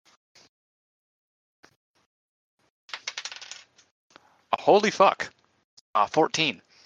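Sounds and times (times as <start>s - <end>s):
dice shaken in a hand: 2.9s - 3.7s
dice tumbling and bouncing across a hard surface: 2.9s - 3.9s
speech: 4.7s - 5.4s, 6.0s - 6.7s.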